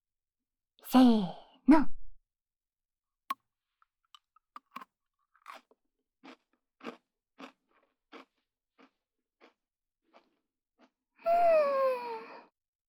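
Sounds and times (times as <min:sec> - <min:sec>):
speech: 0:00.9 - 0:02.0
chocolate biscuit sticks bitten and chewed, crunching: 0:04.5 - 0:04.8, 0:05.4 - 0:10.9.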